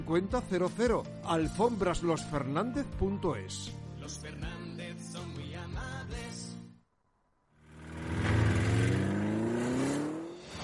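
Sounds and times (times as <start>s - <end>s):
speech: 0.0s - 6.5s
car engine revving: 7.6s - 10.6s.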